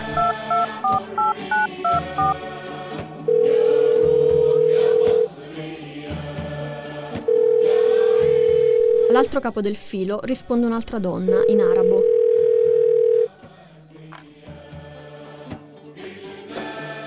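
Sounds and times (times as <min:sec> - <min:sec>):
touch-tone beeps as a phone number is keyed in: 0:00.0 - 0:02.4, 0:03.3 - 0:05.3, 0:07.3 - 0:09.3, 0:11.3 - 0:13.3
speech: 0:09.3 - 0:12.1.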